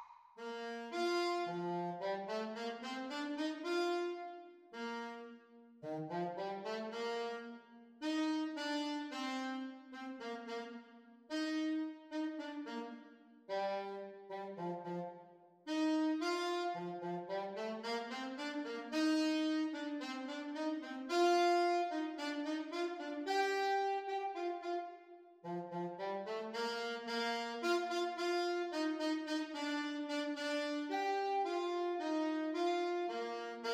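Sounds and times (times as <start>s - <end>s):
alto saxophone duet playalong at exam speed: 0.4s - 33.7s.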